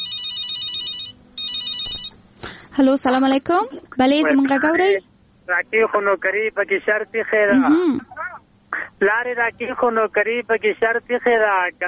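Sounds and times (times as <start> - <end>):
telephone ringing for an incoming call: 0.0 - 2.2
speech: 2.8 - 8.1, 9.0 - 11.8.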